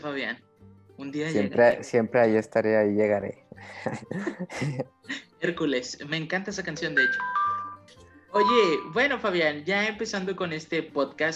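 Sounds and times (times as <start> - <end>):
speech: 0.0 - 7.4, 8.3 - 11.3
laughter: 3.7 - 4.9
cellphone ringtone resembling old house doorbell: 6.8 - 9.2.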